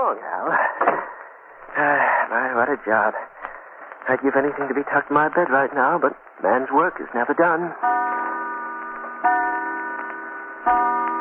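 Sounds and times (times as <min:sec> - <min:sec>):
speech: 0:00.1 - 0:01.1, 0:02.3 - 0:03.3, 0:04.0 - 0:08.5, 0:09.2 - 0:09.5, 0:10.6 - 0:10.9
clock striking with resonant ringing tones: 0:07.8 - 0:11.1.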